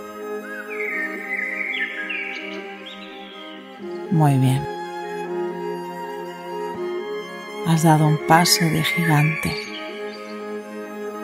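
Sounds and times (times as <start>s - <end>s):
steady sustained musical drone: 0.0s - 11.2s
birds chirping: 0.4s - 4.7s, 7.7s - 10.6s
speech: 4.1s - 4.7s, 7.7s - 9.6s.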